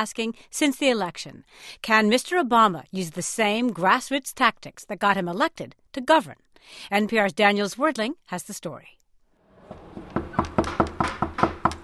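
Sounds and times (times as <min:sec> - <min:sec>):
speech: 0:00.0 - 0:09.0
rapid firm knocking on a door: 0:09.6 - 0:11.8.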